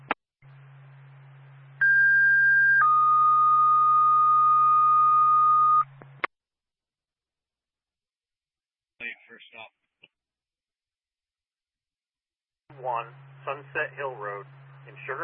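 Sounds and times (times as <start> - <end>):
low hum: 0.0 - 6.3, 12.7 - 15.2
fire dispatch paging tones over a radio channel: 1.8 - 5.9
speech: 14.0 - 15.2.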